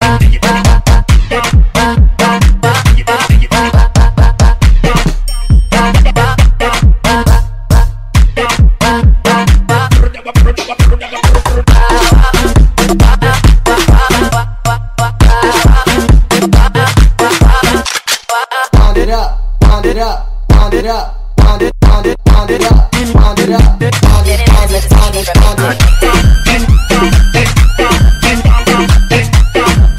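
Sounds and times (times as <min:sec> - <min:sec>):
afrobeat music: 0:00.0 - 0:29.9.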